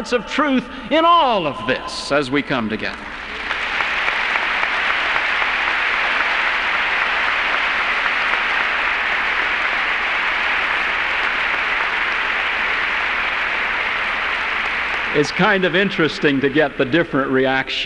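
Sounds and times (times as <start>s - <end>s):
speech: 0.0s - 3.5s, 15.1s - 17.8s
audience at a meeting applauding a speaker: 2.9s - 17.1s.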